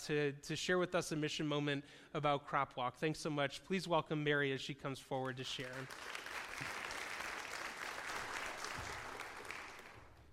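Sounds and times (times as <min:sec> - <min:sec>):
speech: 0:00.0 - 0:06.8
audience applause: 0:05.6 - 0:10.3.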